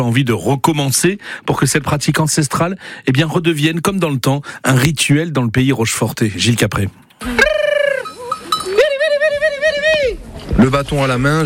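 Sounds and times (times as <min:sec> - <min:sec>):
speech: 0:00.0 - 0:07.4, 0:10.6 - 0:11.4
laughter: 0:07.2 - 0:10.2
bells clinking among a walking flock of sheep: 0:08.0 - 0:08.9.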